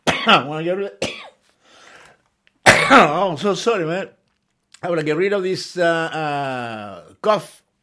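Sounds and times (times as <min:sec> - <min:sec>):
person coughing after choking on cinnamon: 0:00.0 - 0:01.4, 0:02.6 - 0:03.3
speech: 0:00.2 - 0:01.1, 0:02.9 - 0:04.2, 0:04.8 - 0:07.6
raspy breath: 0:01.5 - 0:02.3.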